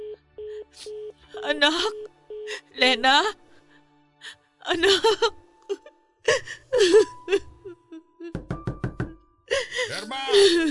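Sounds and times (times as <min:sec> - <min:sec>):
speech: 0:00.8 - 0:03.4, 0:04.2 - 0:07.5, 0:09.8 - 0:10.6
person whimpering and sobbing: 0:04.7 - 0:08.4, 0:09.5 - 0:10.6
firm knocking on a door: 0:08.3 - 0:09.2.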